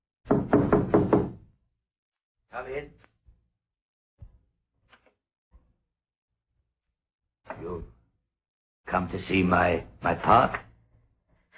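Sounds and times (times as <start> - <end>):
firm knocking on a wooden cottage door: 0.3 - 1.5
speech: 2.6 - 3.1, 8.9 - 10.6.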